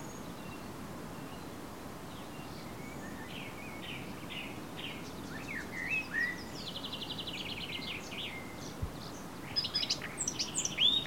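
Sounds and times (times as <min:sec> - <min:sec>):
Eurasian blackcap Sylvia atricapilla song: 0:00.0 - 0:11.0.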